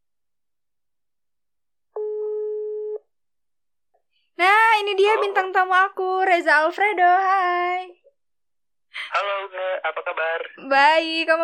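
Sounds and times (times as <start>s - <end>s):
electronic phone ringback tone: 2.0s - 3.0s
speech: 4.4s - 8.0s, 9.1s - 11.4s.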